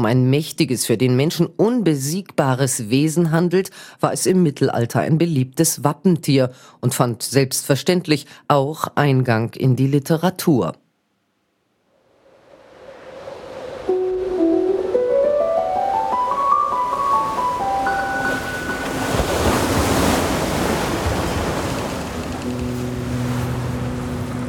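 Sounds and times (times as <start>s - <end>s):
speech: 0.0s - 10.8s
ocean waves and surf: 12.0s - 24.4s
slow ascending sequence of sustained musical tones: 13.9s - 20.2s, 22.1s - 24.4s.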